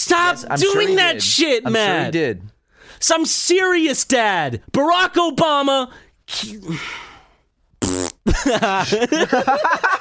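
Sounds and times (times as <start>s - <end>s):
speech: 0.0s - 7.1s, 7.8s - 10.0s
person blowing a wet buzzy raspberry with the mouth imitating a fart: 7.8s - 8.2s
people laughing: 8.3s - 10.0s.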